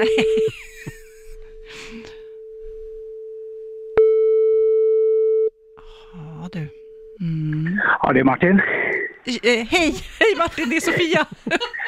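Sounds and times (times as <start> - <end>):
phone ringback tone while a call connects: 0.0 - 0.6, 2.2 - 5.5
speech: 0.0 - 0.6, 6.5 - 11.8
laughter: 0.0 - 1.4, 9.9 - 11.8
faint breathing: 1.2 - 3.1, 5.8 - 6.4.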